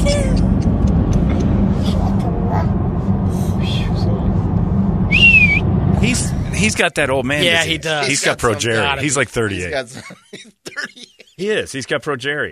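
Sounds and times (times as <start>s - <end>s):
moving car engine and road rumble: 0.0s - 9.2s
person whistling a sliding note in a car: 5.1s - 5.6s
speech: 6.6s - 12.5s
laughter: 7.5s - 11.5s.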